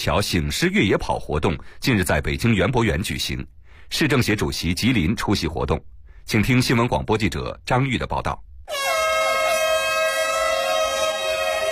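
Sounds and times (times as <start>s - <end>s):
speech: 0.0s - 8.8s
horn blast signalling the start of a cross-country run: 8.7s - 11.7s.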